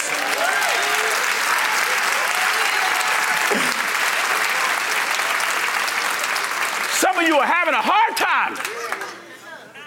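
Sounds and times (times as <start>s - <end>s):
faint cheers: 0.0s - 3.7s
large audience applauding: 0.0s - 9.4s
speech: 7.1s - 8.8s.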